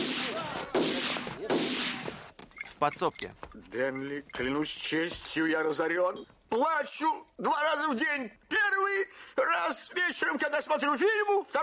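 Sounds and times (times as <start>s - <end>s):
gunshots fired into the air from a saloon window: 0.0s - 2.4s
speech: 2.8s - 11.6s.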